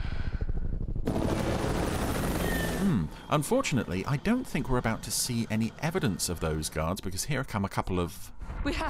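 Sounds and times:
attack helicopter rotors thumping: 0.2s - 6.9s
speech: 3.2s - 8.8s.

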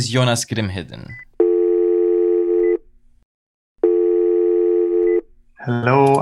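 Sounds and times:
speech: 0.0s - 1.3s, 5.6s - 6.2s
telephone ringback tone of an outgoing call: 1.4s - 2.8s, 3.8s - 5.2s.

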